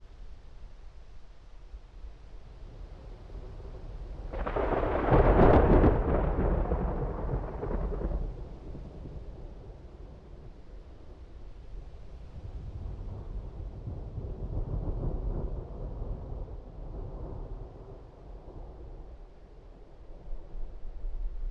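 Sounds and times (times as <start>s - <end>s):
distant rolling thunder: 3.3s - 11.4s, 12.3s - 20.9s.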